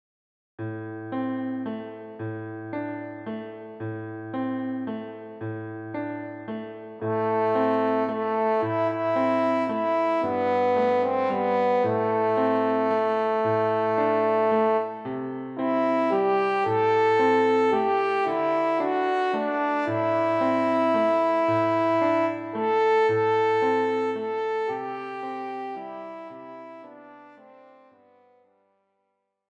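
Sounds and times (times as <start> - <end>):
piano accompaniment: 0.6 - 28.4
F horn melody: 7.0 - 28.5.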